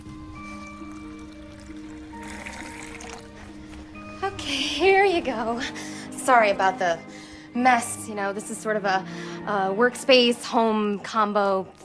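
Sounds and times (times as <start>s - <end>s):
water pouring into a glass: 0.0s - 4.1s
faint tonal hum: 0.0s - 11.8s
speech: 4.4s - 11.8s.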